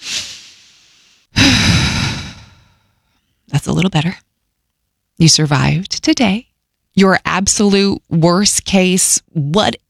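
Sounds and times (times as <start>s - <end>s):
deep breath in and out: 0.0s - 3.0s
speech: 3.6s - 4.3s, 5.2s - 9.8s.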